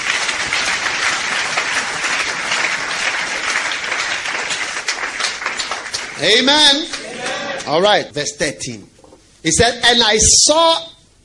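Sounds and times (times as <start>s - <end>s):
congregation clapping hands in sustained applause: 0.0s - 7.8s
speech: 6.2s - 7.0s, 7.7s - 10.9s.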